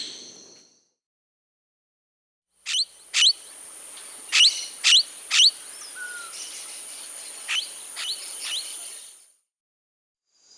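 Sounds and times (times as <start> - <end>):
Blue-headed parrot Pionus menstruus calling in Brazil and Peru: 2.7 - 9.2.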